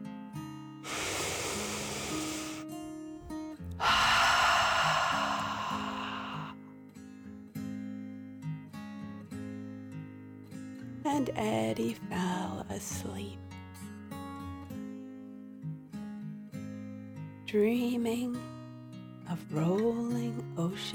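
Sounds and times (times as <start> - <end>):
deep exaggerated breath in and out: 0.8 - 6.6
speech: 11.2 - 13.4, 17.5 - 18.5, 19.3 - 20.9.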